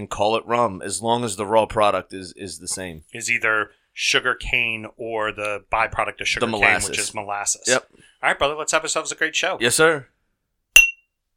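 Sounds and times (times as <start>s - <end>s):
speech: 0.0s - 10.2s
drinking glasses clinking in a toast: 10.8s - 11.0s.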